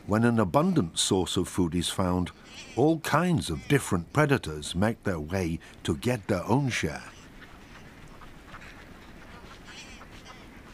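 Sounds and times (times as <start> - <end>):
speech: 0.1 - 7.2
ducks quacking on open water of a freezing lake: 2.2 - 4.7, 6.4 - 10.7.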